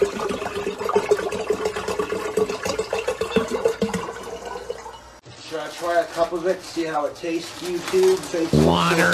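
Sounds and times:
filtered bottled water pouring into a jar: 0:00.0 - 0:05.2
speech: 0:05.8 - 0:09.1.

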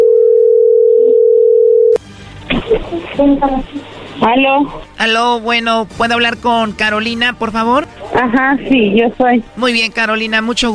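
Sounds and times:
steady telephone dial tone while a call is placed: 0:00.0 - 0:02.0
speech: 0:03.2 - 0:10.7.

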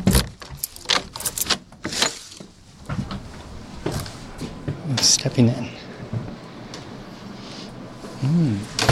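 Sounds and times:
front door lock of a historic house being unlocked: 0:00.1 - 0:02.2
keys jangling and rattling: 0:00.6 - 0:02.2
speech: 0:05.0 - 0:05.8, 0:08.3 - 0:08.7.

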